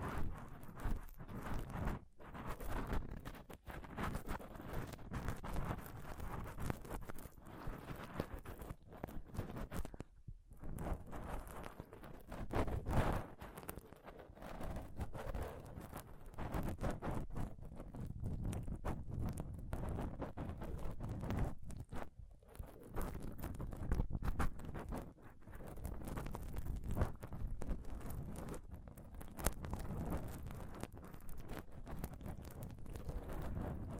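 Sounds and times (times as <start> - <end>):
scratching and rubbing on a microphone: 0.0 - 33.9.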